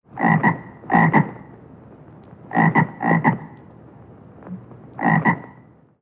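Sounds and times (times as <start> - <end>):
bullfrog calling: 0.2 - 1.5, 2.5 - 3.6, 5.0 - 5.7.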